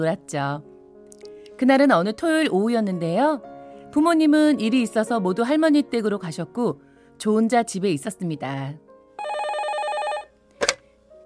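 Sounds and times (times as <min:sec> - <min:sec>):
speech: 0:00.0 - 0:00.7, 0:01.6 - 0:08.8
landline home telephone ringing: 0:09.2 - 0:10.3.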